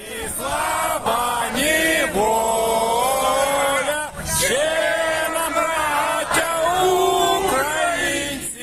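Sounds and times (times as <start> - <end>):
large crowd of protesters singing the national anthem outdoors: 0.0 - 8.6.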